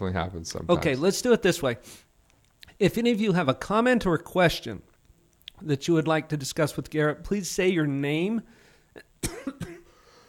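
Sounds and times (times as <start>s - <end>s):
speech: 0.0s - 2.1s, 2.7s - 4.9s, 5.6s - 9.6s
quiet room noise: 0.0s - 10.2s
person coughing: 9.2s - 10.0s.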